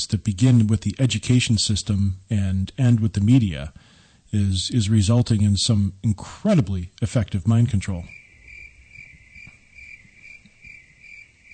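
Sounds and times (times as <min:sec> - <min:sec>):
speech: 0:00.0 - 0:08.2
crickets chirping: 0:07.6 - 0:11.5.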